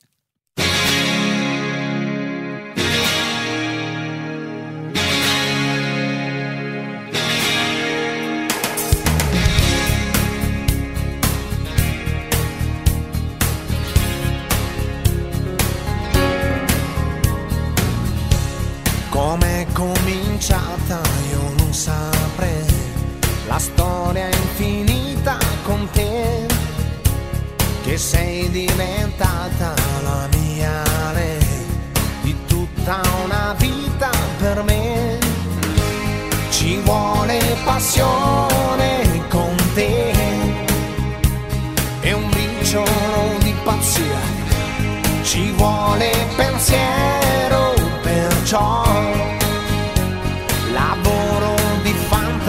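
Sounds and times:
Italian pop song with keyboard chords, band and vocals: 0.6 - 52.4.

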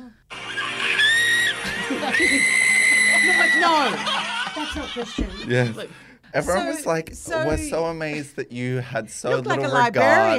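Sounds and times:
person screaming excitedly at a performer: 0.4 - 4.1
laughter: 0.4 - 6.6
speech: 2.2 - 2.6, 3.6 - 10.3.

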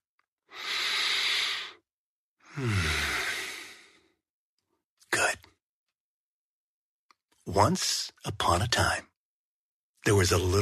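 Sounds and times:
deep slow breath: 0.5 - 1.8, 2.4 - 4.2
speech: 2.6 - 3.0, 7.5 - 9.1, 10.0 - 10.6.

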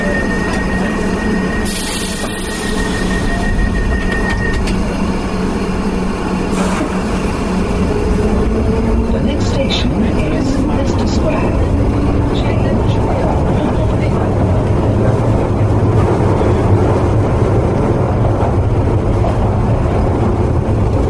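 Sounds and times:
metallic high-pitched squeals of underground train: 0.0 - 5.0
London Underground Piccadilly line train rumbling at a platform: 0.0 - 21.0.

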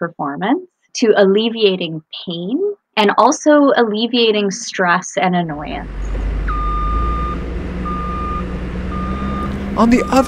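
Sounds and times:
speech: 0.0 - 6.1, 9.8 - 10.2
truck idling with a heavy low rumble: 5.7 - 10.2
truck reversing alarm beeps: 6.4 - 10.2.

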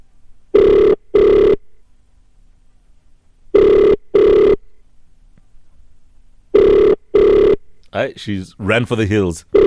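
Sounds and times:
telephone ringing unanswered: 0.6 - 1.6, 3.6 - 4.6, 6.6 - 7.6
speech: 7.9 - 9.6.

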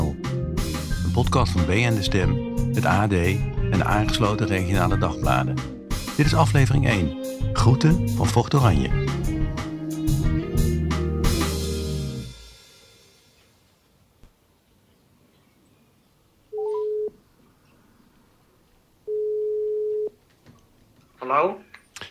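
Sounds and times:
loud musical passage: 0.0 - 12.6
speech: 1.2 - 9.2
phone line ringback tone: 16.5 - 17.2, 19.1 - 20.2.

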